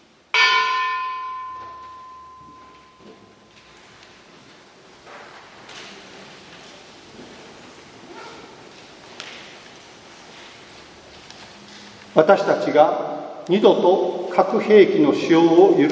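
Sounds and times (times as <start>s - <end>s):
faint outdoor noise: 0.0s - 14.8s
single large church bell struck, long humming decay: 0.3s - 3.5s
dog barking: 8.1s - 8.6s
speech: 12.2s - 15.8s.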